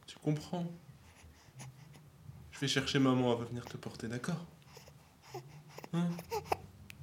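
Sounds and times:
speech: 0.2 - 0.9, 2.6 - 4.6, 5.3 - 6.5
baby crying with strained wails and whimpers: 4.8 - 6.7.

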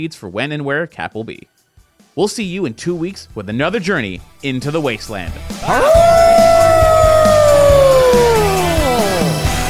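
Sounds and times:
speech: 0.0 - 1.6, 2.2 - 6.4
howl: 5.6 - 9.5.

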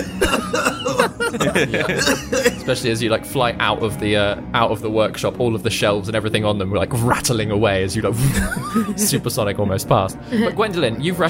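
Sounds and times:
harsh sputtering coughs from dust: 0.0 - 2.8
laughter: 0.0 - 2.8, 8.2 - 9.3
speech: 1.0 - 11.2.

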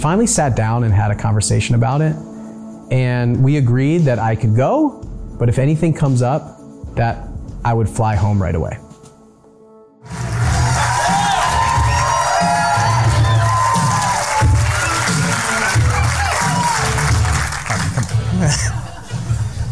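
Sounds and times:
speech: 0.0 - 2.3, 2.9 - 8.8
crowd cheering: 10.1 - 18.3
people clapping: 10.1 - 18.8
whoops: 10.5 - 17.2
scattered laughter: 17.7 - 19.7.

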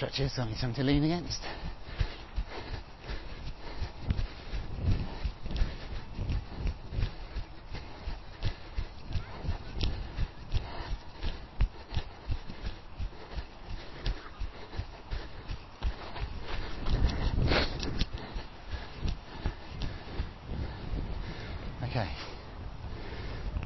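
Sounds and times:
speech: 0.0 - 1.8
footsteps of a person jogging outdoors: 0.0 - 23.6.

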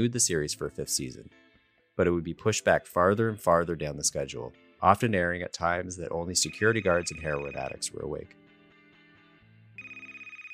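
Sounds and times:
speech: 0.0 - 8.4
telephone ringing with a high electronic tone: 6.4 - 7.9, 9.8 - 10.5.

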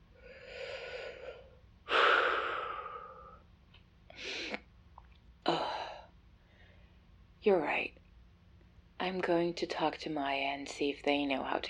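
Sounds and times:
deep slow breathing: 0.2 - 3.4
speech: 7.4 - 8.0, 9.0 - 11.6.

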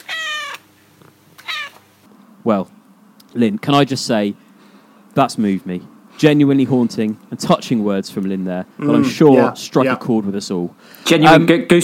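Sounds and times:
cat meowing: 0.0 - 0.6, 1.4 - 1.8
faint noise: 0.0 - 11.8
speech: 2.4 - 4.4, 5.2 - 11.8.

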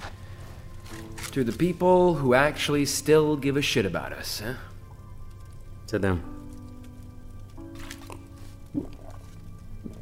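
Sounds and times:
speech: 1.3 - 4.7, 5.9 - 6.4
person slurping melted snow water: 8.0 - 9.3.

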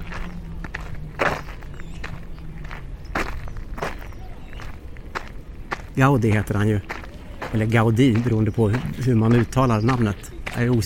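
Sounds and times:
footsteps of a person walking: 0.0 - 10.8
steady low hum: 0.0 - 10.8
speech: 6.0 - 10.8.

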